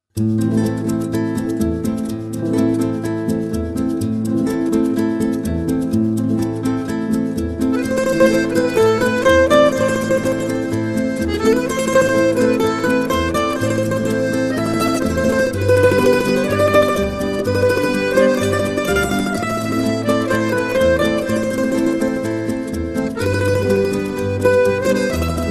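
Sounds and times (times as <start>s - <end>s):
guitar: 0.0s - 25.4s
harmonica: 7.6s - 25.4s.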